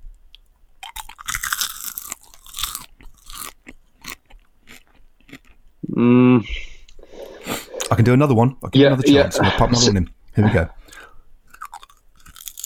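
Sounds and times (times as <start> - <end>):
person crunching and chewing popcorn: 0.3 - 5.7, 10.9 - 12.6
speech: 6.0 - 6.6, 8.0 - 11.1.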